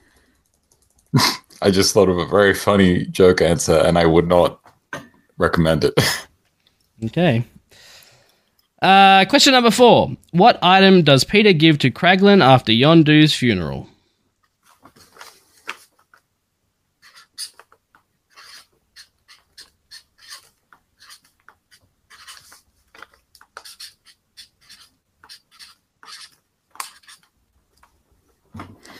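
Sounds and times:
speech: 1.1s - 4.6s, 5.4s - 6.3s, 7.0s - 7.5s, 8.8s - 13.9s
pen scribbling on paper: 17.0s - 17.7s, 18.3s - 22.6s, 23.5s - 27.3s.

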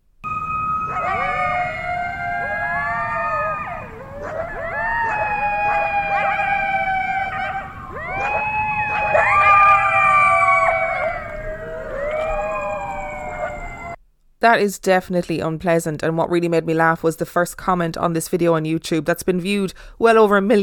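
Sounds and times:
pack of coyotes howling and yipping: 0.2s - 14.0s
speech: 14.4s - 20.6s.

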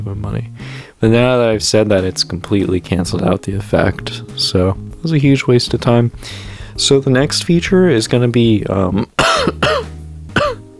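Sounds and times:
speech: 0.0s - 9.9s
person coughing into hand: 9.2s - 10.7s.

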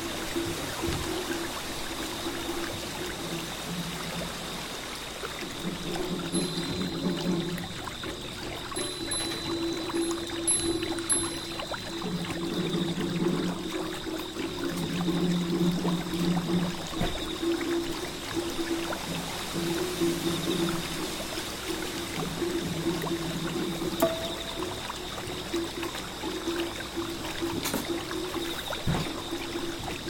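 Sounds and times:
drums echoing on a small bridge: 0.0s - 30.0s
flowing water: 0.0s - 30.0s
faint high chirps: 8.7s - 12.1s, 24.0s - 24.9s.

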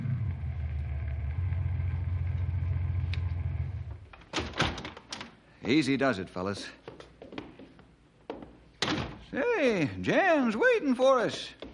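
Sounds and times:
car engine rumbling low as the car coasts slowly up to a house: 0.0s - 4.2s
speech: 5.6s - 6.8s, 9.4s - 11.6s.

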